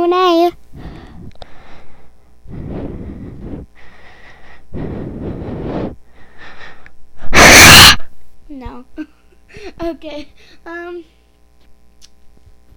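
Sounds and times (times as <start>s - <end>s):
heavy breathing into a microphone: 0.7s - 7.0s
loud blast of air into a microphone: 7.3s - 8.0s
speech: 9.8s - 11.2s.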